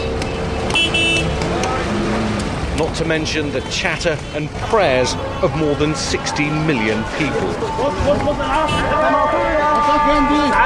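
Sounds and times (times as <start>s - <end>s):
rumble of congested city traffic engines in Cairo: 0.0s - 10.6s
short high car-horn toot in Cairo traffic: 0.7s - 1.4s, 8.5s - 9.0s
speech: 2.9s - 10.6s.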